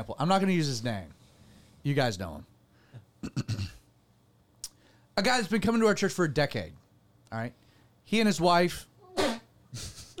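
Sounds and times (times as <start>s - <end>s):
speech: 0.0s - 1.2s, 1.8s - 2.5s, 3.2s - 3.8s, 5.2s - 10.1s
person sneezing: 9.1s - 9.5s.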